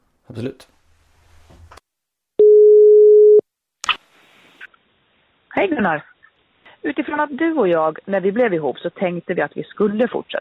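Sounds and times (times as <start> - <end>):
speech: 0.3 - 0.8, 5.6 - 6.1, 6.8 - 10.4
mid-pitched ringback tone of outgoing telephone call: 2.4 - 3.4.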